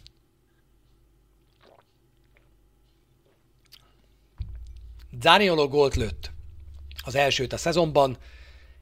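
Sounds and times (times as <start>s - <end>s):
small wet mouth clicks: 1.5s - 2.5s, 3.6s - 3.9s
sipping and swallowing by a football commentator: 1.5s - 2.6s
louder low thump: 4.4s - 8.7s
speech: 5.1s - 6.3s, 7.1s - 8.4s.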